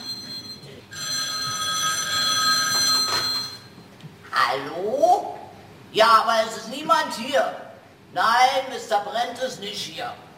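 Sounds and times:
telephone bell ringing: 0.0s - 3.8s
speech: 6.0s - 10.2s.

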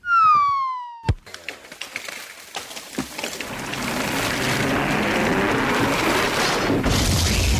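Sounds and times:
falling whistle: 0.0s - 1.1s
crash of breaking and clattering debris: 1.4s - 7.5s.

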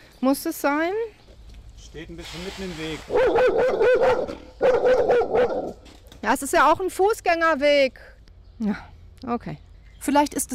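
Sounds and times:
speech: 0.2s - 1.2s, 1.9s - 10.5s
stressed female dog barking on a busy city footpath: 3.1s - 5.8s.

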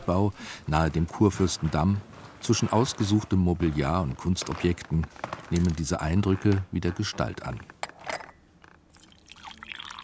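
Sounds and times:
speech: 0.1s - 7.7s
tea being poured: 8.9s - 10.0s.

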